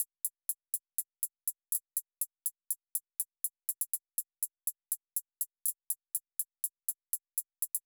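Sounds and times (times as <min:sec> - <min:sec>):
122 BPM hi-hat drum loop: 0:00.0 - 0:07.8.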